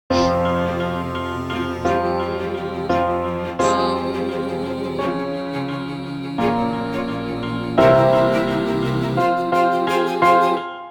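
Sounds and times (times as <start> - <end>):
string instrument chord progression: 0.1 - 10.8
voice: 1.9 - 10.6.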